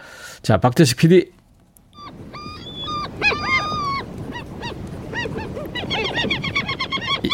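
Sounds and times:
speech: 0.5s - 1.4s
steady rushing wind: 1.5s - 7.3s
flock of seagulls squawking: 1.9s - 7.3s.

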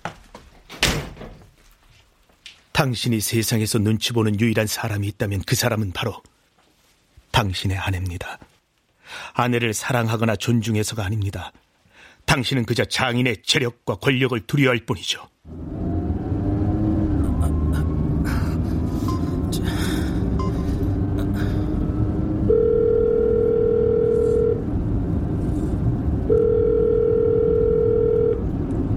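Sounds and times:
rustling: 0.0s - 2.7s, 6.4s - 7.4s
speech: 2.8s - 6.3s, 7.4s - 8.5s, 9.4s - 11.7s, 12.3s - 15.6s
constant low car engine rumble: 15.5s - 28.9s
electronic ringback tones of an unanswered outgoing phone call: 22.5s - 24.6s, 26.3s - 28.5s.

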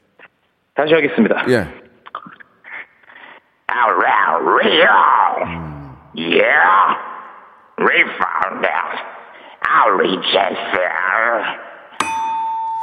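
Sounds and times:
speech: 0.8s - 1.8s, 3.8s - 7.0s, 7.8s - 9.1s, 9.7s - 11.7s
singing voice with heavy echo effect: 1.5s - 1.8s.

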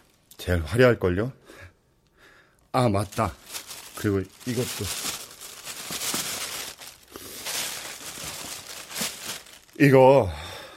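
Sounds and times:
speech: 0.4s - 1.7s, 2.8s - 3.4s, 4.0s - 5.1s, 9.8s - 10.4s
bag rustling as a portable cassette player and tapes are pulled out: 3.0s - 10.0s.

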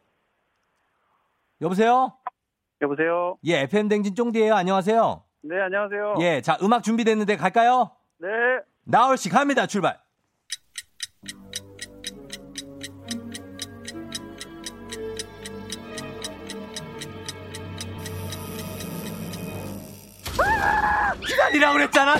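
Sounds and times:
speech: 1.6s - 2.2s, 2.8s - 10.6s, 21.1s - 22.1s
clockwork spring winding: 10.5s - 20.4s
music: 11.2s - 20.2s.

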